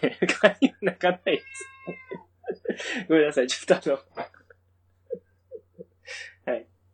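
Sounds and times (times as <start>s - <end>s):
speech: 0.0s - 1.8s, 2.8s - 4.4s
laughter: 0.0s - 3.3s
cat meowing: 1.2s - 2.4s.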